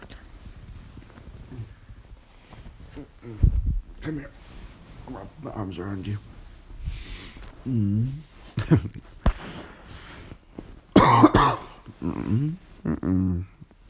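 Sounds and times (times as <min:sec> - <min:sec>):
speech: 0:04.0 - 0:06.3, 0:07.6 - 0:09.1, 0:12.0 - 0:13.5
person coughing: 0:11.0 - 0:12.4
throat clearing: 0:11.0 - 0:13.5
low voiced groans: 0:12.0 - 0:13.6.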